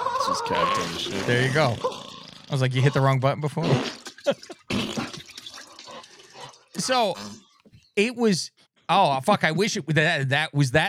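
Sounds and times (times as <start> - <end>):
brief vocal sound: 0.0 - 7.5
speech: 0.3 - 4.8, 6.8 - 10.8
liquid gushing and splashing into a toilet bowl: 3.8 - 6.8.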